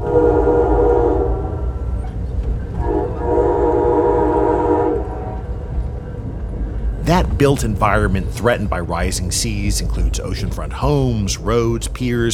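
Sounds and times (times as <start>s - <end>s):
passenger train horn blasts: 0.0s - 1.9s, 2.7s - 5.7s
passenger train rumbling along the coast: 0.0s - 12.3s
speech: 7.4s - 12.3s.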